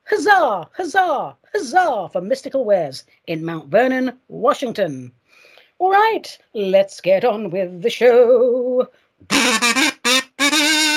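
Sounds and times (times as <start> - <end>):
speech: 0.2 - 5.2, 5.8 - 9.9
duck quacking: 9.3 - 10.9.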